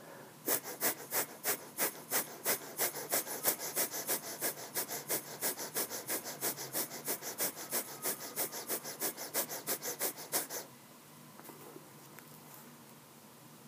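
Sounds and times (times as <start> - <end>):
rapid forceful breathing in a breath-of-fire breathing exercise: 0.0 - 10.7.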